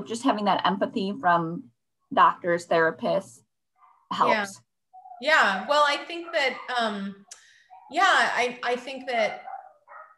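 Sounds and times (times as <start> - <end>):
speech: 0.0 - 3.4, 4.1 - 4.6, 5.2 - 7.3, 7.9 - 9.4
dogs barking with quick yelping barks: 3.8 - 4.2, 4.9 - 8.4, 9.0 - 10.1.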